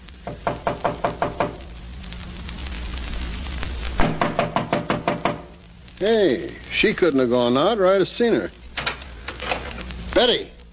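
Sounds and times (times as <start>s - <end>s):
low hum and hiss: 0.0s - 10.7s
sharp rapid knocking on a door: 0.3s - 1.6s, 4.0s - 5.4s
speech: 6.0s - 8.6s, 10.2s - 10.5s.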